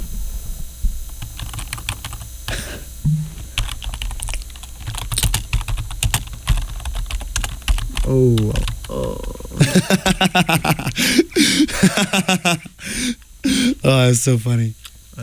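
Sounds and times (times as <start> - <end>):
typing on a keyboard: 1.2 - 2.3, 3.6 - 8.9
speech: 8.1 - 14.8
laughter: 9.5 - 12.8.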